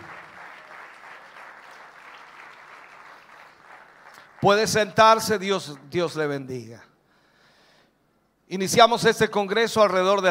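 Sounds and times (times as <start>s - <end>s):
large crowd at a church congress applauding: 0.0s - 6.0s
speech: 4.4s - 6.9s, 8.5s - 10.2s.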